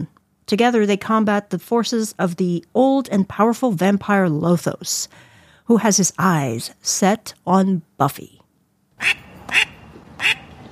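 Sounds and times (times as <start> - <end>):
speech: 0.0 - 8.4, 9.0 - 10.4
loud nasal duck quacks: 9.0 - 10.6.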